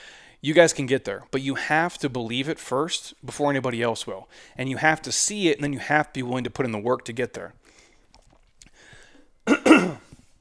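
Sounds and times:
speech: 0:00.4 - 0:07.6
harsh raspy coughs after a hard workout: 0:09.4 - 0:10.2.

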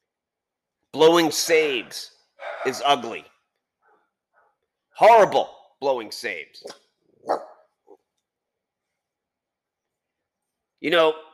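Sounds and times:
speech: 0:00.9 - 0:03.3, 0:05.0 - 0:07.5, 0:10.8 - 0:11.3
dog barking: 0:01.4 - 0:03.2, 0:07.2 - 0:07.7
dog yipping softly: 0:07.2 - 0:07.6.

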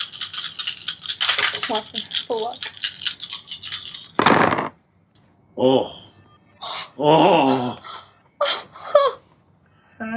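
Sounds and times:
handful of eight dice rattling and clattering: 0:00.0 - 0:04.6
speech: 0:01.7 - 0:02.7, 0:05.6 - 0:06.0, 0:07.0 - 0:07.8.

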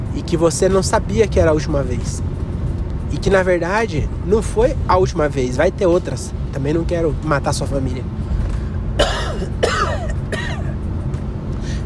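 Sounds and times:
low engine-like rumble inside a moving vehicle: 0:00.0 - 0:11.8
speech: 0:00.2 - 0:02.3, 0:03.1 - 0:08.2, 0:09.0 - 0:09.8
person coughing: 0:09.0 - 0:10.8.

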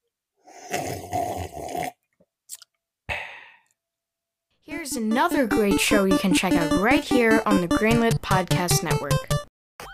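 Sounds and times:
long loud slurp of coffee from a cup: 0:00.4 - 0:02.7
speech: 0:00.7 - 0:01.8, 0:05.0 - 0:09.4
breathy exhale: 0:03.1 - 0:03.7.

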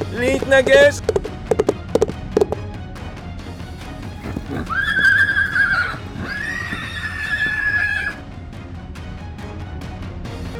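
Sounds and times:
sharp hoof-like taps: 0:00.0 - 0:02.7, 0:04.2 - 0:07.7
speech: 0:00.1 - 0:01.1
horse whinnying after stopping in front of an oncoming ATV: 0:04.2 - 0:08.2.

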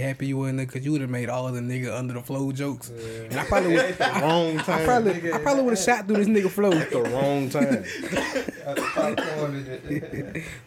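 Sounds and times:
speech: 0:00.0 - 0:10.6
laughter: 0:03.3 - 0:10.6
person coughing and choking, struggling to breathe: 0:06.6 - 0:09.6.

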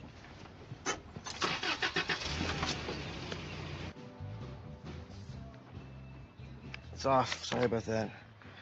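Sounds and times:
car engine starting and idling: 0:00.8 - 0:04.0
speech: 0:07.0 - 0:08.2.

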